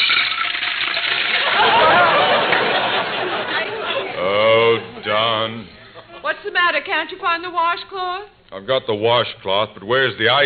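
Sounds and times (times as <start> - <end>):
water poured from a pitcher into a bowl for washing up: 0.0 - 1.5
laughter: 1.3 - 6.4
speech: 6.7 - 10.4.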